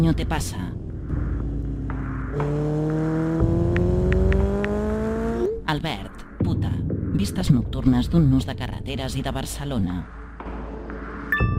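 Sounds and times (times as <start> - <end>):
speech: 0.0 - 0.8, 2.4 - 2.9, 5.7 - 10.2
motorcycle engine droning while travelling along a road: 0.8 - 5.6.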